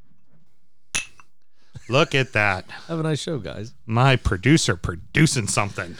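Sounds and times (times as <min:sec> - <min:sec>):
whiskey glasses clinking as handed over: 0:01.0 - 0:01.3
laughter: 0:01.8 - 0:05.9
speech: 0:01.9 - 0:05.9.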